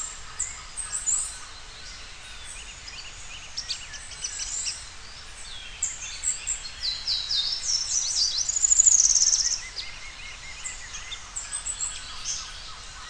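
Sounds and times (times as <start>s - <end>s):
bird song of rapid high chirps and buzzy descending notes: 0.0s - 13.0s
steady low background hiss: 0.0s - 13.0s.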